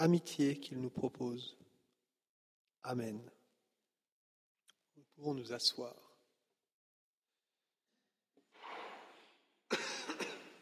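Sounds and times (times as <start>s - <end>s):
speech: 0.0s - 1.6s, 2.8s - 3.4s, 5.2s - 6.1s
person coughing harshly: 9.7s - 10.6s.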